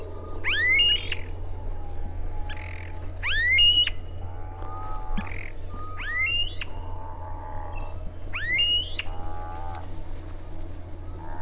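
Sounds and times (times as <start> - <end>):
low background hum: 0.0 - 11.4
Smooth-billed ani calling: 2.5 - 4.0, 5.2 - 6.7, 8.3 - 9.0.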